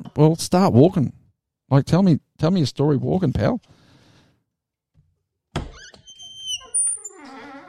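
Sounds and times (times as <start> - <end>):
speech: 0.2 - 3.8
fridge door hinges squeaking: 5.6 - 7.6.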